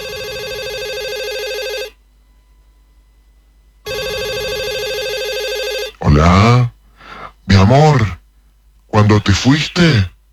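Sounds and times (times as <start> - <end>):
cell phone ringing with bright electronic ringtone: 0.0 - 2.0, 3.9 - 6.7
speech: 7.7 - 8.2, 9.0 - 10.1.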